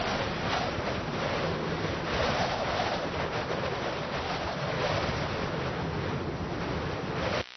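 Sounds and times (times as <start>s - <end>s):
wind in trees: 0.0s - 7.5s.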